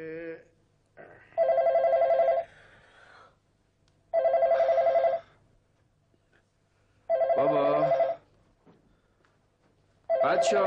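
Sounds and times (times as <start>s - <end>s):
telephone ringing in a family home: 1.4s - 2.4s, 4.1s - 5.3s, 7.1s - 8.3s, 10.1s - 10.6s
speech: 10.4s - 10.6s.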